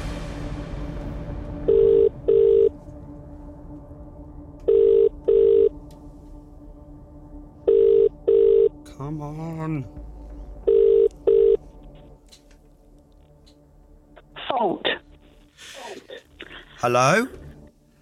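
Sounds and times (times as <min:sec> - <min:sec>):
telephone ringback tone on an outgoing call: 0:01.7 - 0:02.7, 0:04.7 - 0:05.7, 0:07.7 - 0:08.7, 0:10.7 - 0:11.6
speech: 0:16.8 - 0:17.4.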